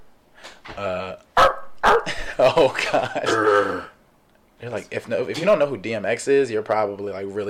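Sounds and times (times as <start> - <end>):
speech: 0.8 - 1.2, 2.4 - 3.9, 4.6 - 7.4
person imitating a small dog's bark: 0.8 - 2.2, 3.2 - 4.0
laughter: 2.1 - 3.9.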